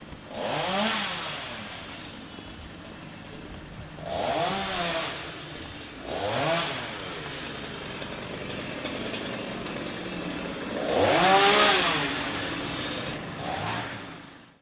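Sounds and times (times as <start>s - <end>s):
electric chainsaw cutting tree: 0.1s - 14.6s.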